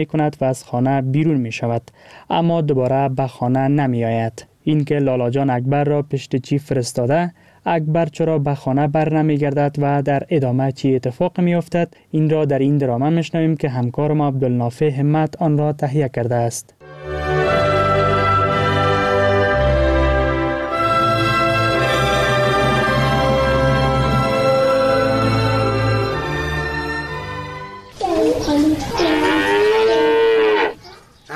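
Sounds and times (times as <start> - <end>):
speech: 0.0 - 16.8
sustained instrumental music: 16.8 - 28.3
cow mooing in a stable: 29.0 - 31.0.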